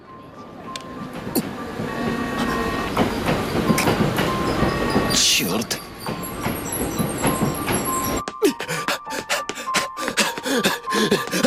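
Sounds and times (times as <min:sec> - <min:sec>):
train rolling in along the tracks: 0:00.0 - 0:11.4
sharp metallic clacks of train on tracks: 0:02.4 - 0:08.2.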